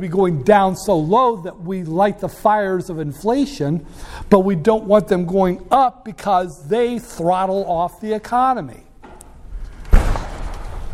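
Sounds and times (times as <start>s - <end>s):
speech: 0.0s - 8.9s
classroom door banging shut: 9.8s - 10.9s.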